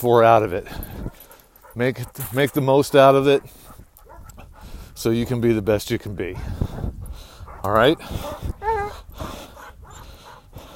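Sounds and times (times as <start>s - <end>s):
speech: 0.0s - 0.9s, 1.8s - 3.7s, 5.0s - 7.0s, 7.6s - 8.6s
dog breathing softly: 0.6s - 5.2s, 6.4s - 10.7s
dog whimpering: 7.5s - 10.1s.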